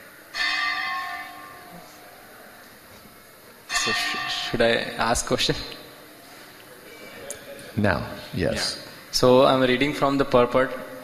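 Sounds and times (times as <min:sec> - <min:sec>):
bell ringing with a sharp metallic strike: 0:00.3 - 0:01.6, 0:03.7 - 0:04.6
speech: 0:03.9 - 0:05.8, 0:07.8 - 0:10.9.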